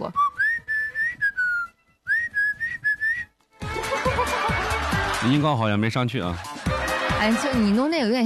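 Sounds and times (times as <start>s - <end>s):
person whistling a short melody: 0.0s - 3.4s
laughter: 3.6s - 8.2s
speech: 5.2s - 6.5s, 7.2s - 8.2s.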